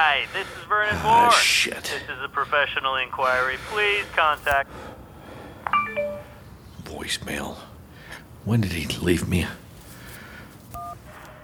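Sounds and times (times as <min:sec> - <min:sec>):
constant hissy noise: 0:00.0 - 0:11.0
speech: 0:00.2 - 0:04.9, 0:06.9 - 0:07.7, 0:08.4 - 0:09.6
telephone dialing tone dual-pitched beep: 0:05.7 - 0:06.3, 0:10.8 - 0:11.0.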